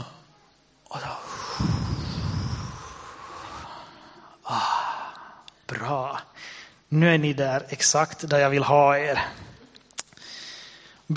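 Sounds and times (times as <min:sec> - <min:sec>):
crowd of people taking a deep breath together: 0:01.2 - 0:05.4, 0:10.2 - 0:11.1
speech: 0:06.9 - 0:09.5.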